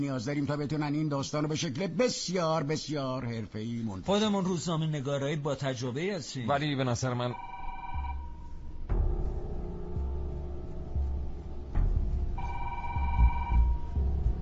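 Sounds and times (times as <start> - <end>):
speech: 0.0 - 7.5
electronic telephone ringing: 7.3 - 8.4, 12.4 - 13.9
low rumble: 7.4 - 14.4.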